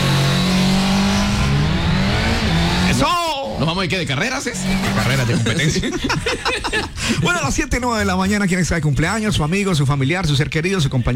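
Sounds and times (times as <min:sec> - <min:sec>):
200cc motorcycle engine revving: 0:00.0 - 0:05.5
speech: 0:03.0 - 0:11.1
laughter: 0:04.6 - 0:07.6.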